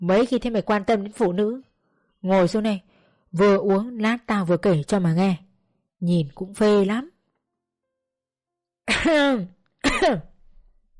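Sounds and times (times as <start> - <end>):
speech: 0.0 - 5.4, 6.0 - 7.1, 9.0 - 10.3
woman clearing her throat: 8.9 - 10.4.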